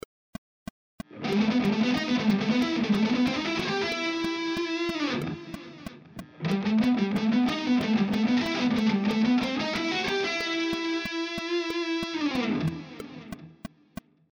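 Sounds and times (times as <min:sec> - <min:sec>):
picking exercises with melodic phrases: 0:01.2 - 0:05.8, 0:06.5 - 0:13.3.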